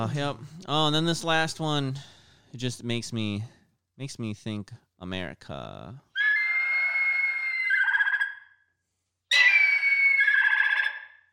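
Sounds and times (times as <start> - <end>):
speech: 0.0 - 6.1
bald eagle screaming: 6.2 - 8.6, 9.3 - 11.3.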